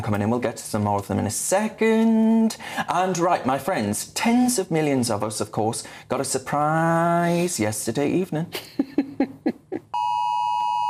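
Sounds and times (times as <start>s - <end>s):
speech: 0.0s - 9.1s
government wildfire emergency alert tone on mobile phones: 10.0s - 10.8s.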